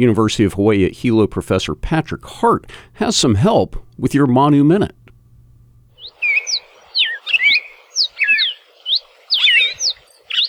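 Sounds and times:
speech: 0.0 - 5.0
red-crested and yellow-billed cardinals singing in Hawaii: 5.9 - 10.4.

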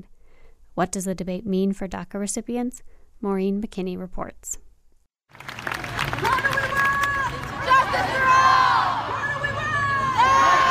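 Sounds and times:
speech: 0.8 - 4.6
protest crowd shouting and cheering: 5.8 - 10.6.

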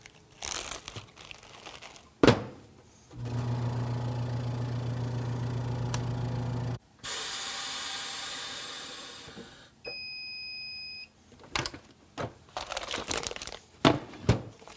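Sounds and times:
plastic bag crinkling: 0.0 - 2.2, 12.5 - 13.8, 14.6 - 14.7
chamber vacuum sealer motor pump humming: 3.2 - 10.1
rush of hissing air from chamber vacuum sealer: 7.0 - 9.8.

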